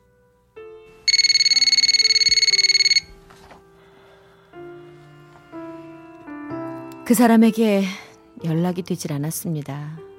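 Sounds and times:
soft music: 0.0 - 10.1
telephone ringing unanswered: 1.0 - 3.2
speech: 7.1 - 10.0.

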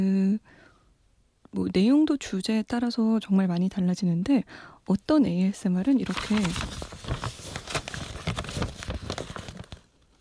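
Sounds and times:
speech: 0.0 - 0.5, 1.5 - 6.9
paper crumpling: 6.0 - 10.1.

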